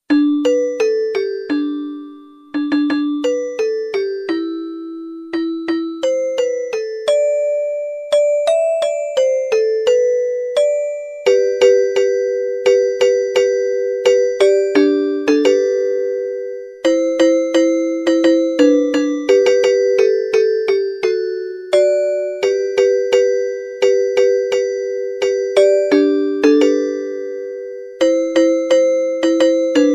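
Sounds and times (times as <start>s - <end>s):
jingling bell ringtone: 0.1s - 29.9s.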